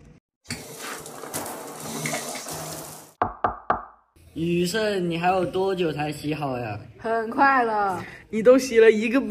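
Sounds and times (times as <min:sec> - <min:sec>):
water running from a kitchen tap: 0:00.5 - 0:03.2
speech: 0:04.4 - 0:09.2.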